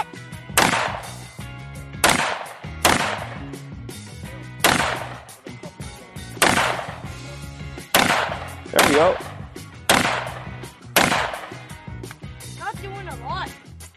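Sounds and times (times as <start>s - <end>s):
Tavor rifle firing .223 full metal jacket rounds: 0.6s - 1.3s, 2.0s - 3.5s, 4.6s - 5.4s, 6.4s - 7.1s, 7.9s - 11.7s
speech: 9.0s - 9.2s.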